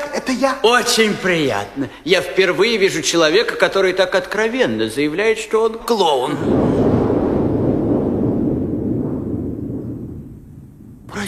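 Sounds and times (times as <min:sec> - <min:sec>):
speech: 0:00.3 - 0:06.9
deep rolling boom of distant cannon fire: 0:06.4 - 0:11.2.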